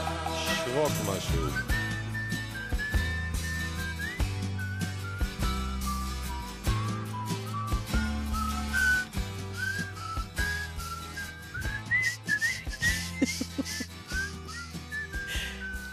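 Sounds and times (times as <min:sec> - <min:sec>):
bass and drums backing: 0:00.0 - 0:15.9
person whistling a lilting melody: 0:00.0 - 0:15.9
speech: 0:00.7 - 0:01.8
laughter: 0:12.9 - 0:14.3.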